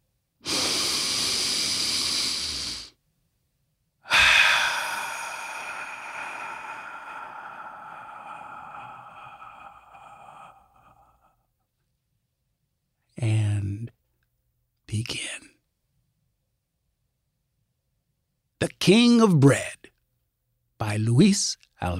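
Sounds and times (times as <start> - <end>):
deep breathing: 0.4 - 3.0, 4.0 - 11.8
speech: 18.8 - 19.9, 20.9 - 21.9.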